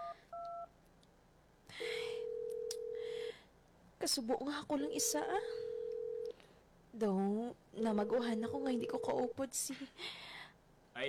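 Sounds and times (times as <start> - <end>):
long steady ringback tone of an unanswered call: 0.0 - 0.7
phone keypad beeps of a phone being dialed: 0.0 - 0.7
faint noise: 0.0 - 11.0
speech: 4.0 - 5.6, 7.0 - 10.3.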